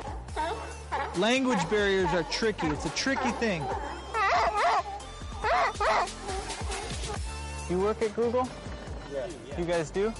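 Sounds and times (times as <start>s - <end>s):
dog barking: 0.0s - 7.2s
speech: 1.2s - 4.0s, 7.7s - 10.1s.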